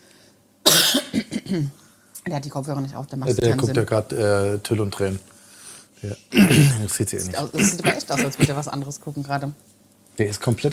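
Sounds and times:
person coughing into a microphone: 0.7 - 1.6, 6.4 - 8.7
speech: 1.5 - 5.4, 6.0 - 10.7.

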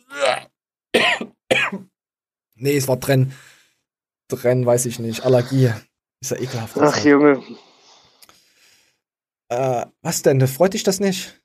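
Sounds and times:
person coughing harshly: 1.0 - 1.9
speech: 1.7 - 1.9, 2.6 - 3.5, 4.3 - 7.7, 9.5 - 11.4.

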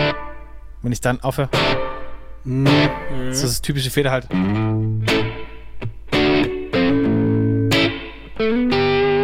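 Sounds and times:
distorted electric guitar chords with reverb before amp: 0.0 - 0.4, 1.6 - 3.5, 4.3 - 9.2
speech: 0.8 - 5.9.

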